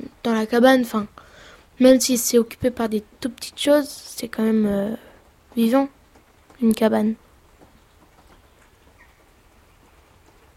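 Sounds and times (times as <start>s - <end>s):
light rain falling: 0.0s - 10.5s
speech: 0.2s - 1.2s, 1.8s - 6.0s, 6.6s - 7.2s.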